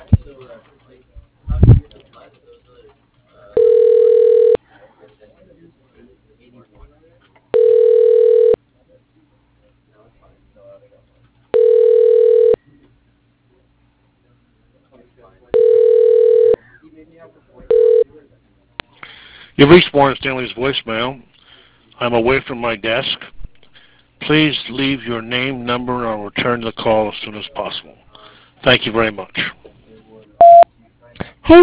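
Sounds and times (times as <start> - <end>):
telephone ringback tone while a call is transferred: 3.6 - 4.6, 7.6 - 8.6, 11.5 - 12.6, 15.6 - 16.6, 17.7 - 18.0, 30.4 - 30.6
speech: 19.7 - 21.3, 22.0 - 23.3, 24.3 - 28.0, 28.6 - 29.6, 31.5 - 31.6.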